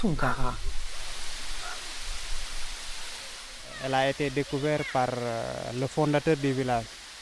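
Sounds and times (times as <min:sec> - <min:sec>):
speech: 0:00.0 - 0:00.7, 0:03.8 - 0:07.0
waterfall roaring in a rocky bay: 0:00.0 - 0:07.2.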